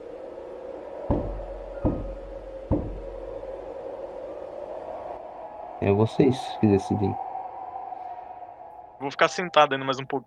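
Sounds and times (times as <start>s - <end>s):
firm knocks on a door: 1.1s - 3.0s
speech: 5.8s - 7.2s, 9.1s - 10.2s.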